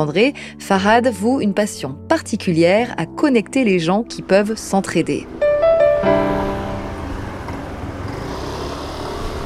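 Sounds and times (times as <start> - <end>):
speech: 0.0 - 5.4
street traffic outside a metro stop in the 11th arrondissement: 3.0 - 9.4
bright tonal blare: 5.3 - 8.0.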